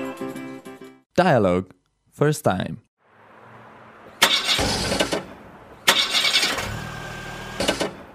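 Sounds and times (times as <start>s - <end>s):
speech: 1.2s - 2.9s
old car engine cranking and failing to start: 4.1s - 8.1s.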